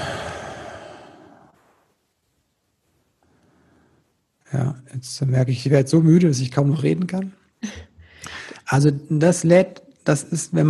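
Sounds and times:
long deep relaxed breath out by a person relaxing: 0.0s - 1.6s, 8.0s - 8.6s
speech: 4.5s - 7.9s, 8.7s - 10.6s.

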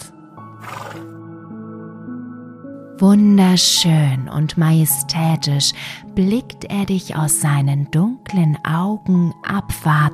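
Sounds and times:
black stallion neighing: 0.6s - 1.1s
speech: 3.0s - 10.1s.

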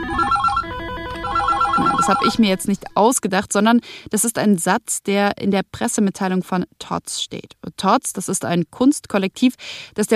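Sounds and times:
phone ringtone electronic melody: 0.0s - 3.0s
speech: 2.1s - 10.1s.

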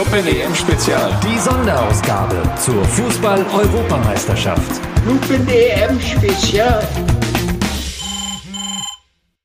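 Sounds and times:
speech: 0.1s - 7.2s
mobile phone ringtone for an incoming call: 7.9s - 9.0s.

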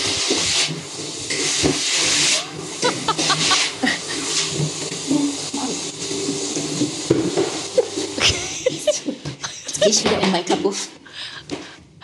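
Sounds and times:
quiet silent-model vacuum cleaner running: 0.0s - 10.6s
laughter: 2.8s - 4.3s, 8.2s - 10.0s
speech: 9.8s - 11.0s.

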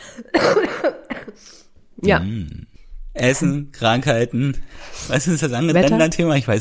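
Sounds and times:
person coughing in a coughing fit: 0.0s - 1.6s
speech: 2.0s - 6.6s.

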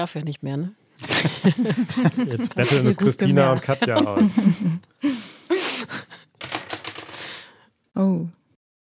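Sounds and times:
speech: 0.0s - 6.0s, 8.0s - 8.4s
laughter: 1.0s - 4.8s
dice clattering across a hard surface: 6.4s - 7.2s.

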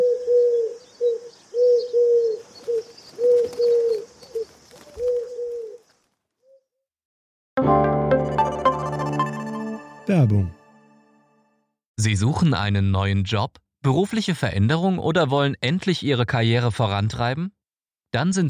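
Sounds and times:
faint chirps: 0.0s - 5.8s
low throaty pigeon coos: 0.0s - 5.9s
music: 7.6s - 11.8s
speech: 10.2s - 10.6s, 12.0s - 18.4s.

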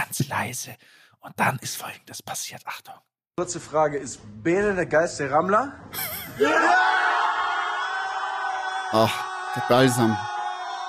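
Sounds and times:
speech: 0.3s - 7.1s, 8.9s - 10.3s
laughter: 5.9s - 6.9s
huge crowd shouting in packed Oktoberfest festival tent: 6.4s - 10.8s.

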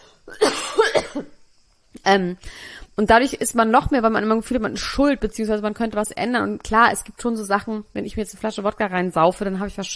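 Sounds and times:
person coughing: 0.3s - 1.3s
speech: 2.0s - 9.9s.

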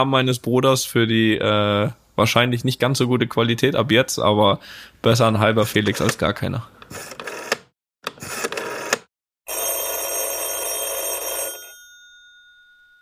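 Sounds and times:
speech: 0.0s - 7.2s
mobile phone call ringing: 7.0s - 7.6s, 8.2s - 12.9s.

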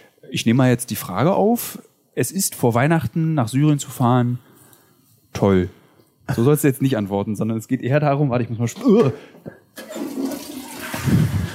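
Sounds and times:
speech: 0.3s - 4.5s, 5.3s - 9.9s
toilet flushing: 9.8s - 11.5s.

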